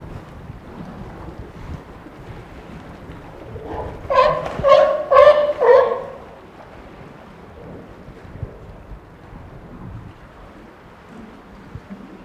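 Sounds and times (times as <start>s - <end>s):
California sea lion at a zoo in Nyíregyháza: 0.0s - 12.0s.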